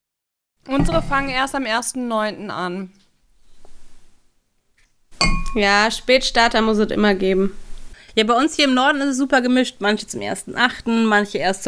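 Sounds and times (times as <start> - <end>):
speech: 0.7 - 3.0, 5.5 - 7.6, 8.2 - 11.6
soft rustling: 3.1 - 5.0, 6.9 - 8.0
glasses clinking together in a toast: 5.2 - 5.8.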